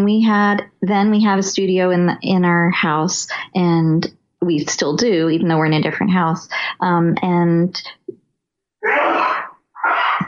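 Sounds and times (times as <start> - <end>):
speech: 0.0 - 8.1
man sneezing: 8.8 - 10.0.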